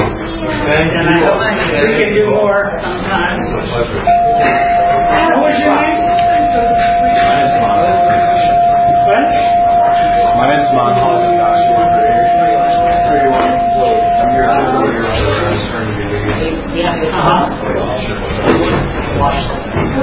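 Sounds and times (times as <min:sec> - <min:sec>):
murmuring voices and chatter: 0:00.0 - 0:20.0
bell rung to end a session: 0:04.1 - 0:15.1.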